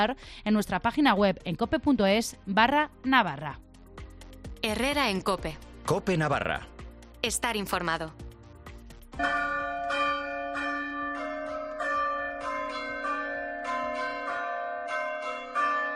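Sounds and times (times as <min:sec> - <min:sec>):
speech: 0:00.0 - 0:03.6, 0:04.6 - 0:08.2, 0:09.2 - 0:09.5
bell-like chime alert melody warning of heat waves or floods in Navarra: 0:09.2 - 0:15.9.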